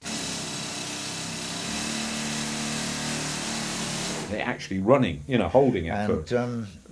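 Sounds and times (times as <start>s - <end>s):
pneumatic air-leg rock drill running: 0.0s - 4.3s
speech: 4.3s - 6.9s.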